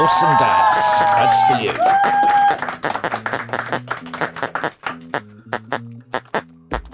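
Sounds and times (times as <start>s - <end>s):
speech: 0.0s - 3.5s
loose hand claps in a sparse round of applause: 0.2s - 5.2s
sustained low musical tone: 2.6s - 6.9s.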